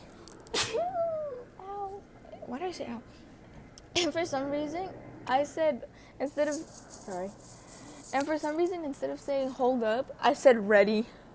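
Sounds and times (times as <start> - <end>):
sharp sneeze trailing into a short voiced rising sound: 0.5 - 1.0
speech: 2.5 - 3.2, 4.0 - 11.2.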